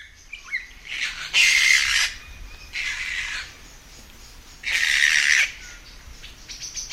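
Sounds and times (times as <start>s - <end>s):
scattered bird chirps at dusk in Karori Sanctuary: 0.0s - 6.9s
young kaka New Zealand forest parrots screeching in Karori Sanctuary: 0.5s - 3.5s, 4.6s - 5.8s.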